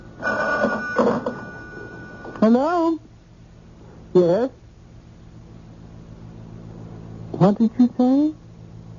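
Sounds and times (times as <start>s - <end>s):
telephone ringing in an apartment: 0.0s - 2.7s
speech: 2.4s - 3.1s, 4.1s - 4.6s, 7.4s - 8.4s.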